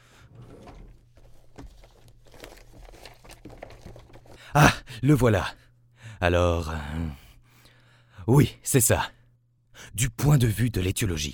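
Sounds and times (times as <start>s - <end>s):
papers rustling and crinkling while searching: 0.4s - 4.5s
speech: 4.5s - 5.6s, 6.2s - 7.2s, 8.3s - 9.2s, 9.8s - 11.3s.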